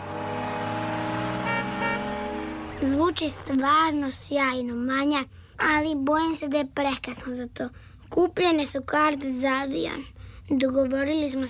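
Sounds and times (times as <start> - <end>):
car engine droning while driving: 0.0 - 4.3
speech: 2.8 - 11.4.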